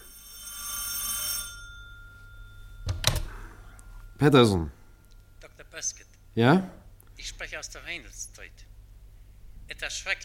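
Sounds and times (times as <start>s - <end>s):
telephone bell ringing: 0.0s - 5.0s
speech: 4.2s - 4.8s, 5.8s - 8.7s, 9.7s - 10.2s.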